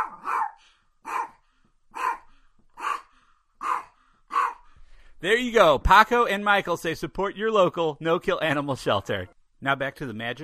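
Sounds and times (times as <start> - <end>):
dog barking: 0.0 - 1.4, 2.0 - 4.7
speech: 5.2 - 10.4.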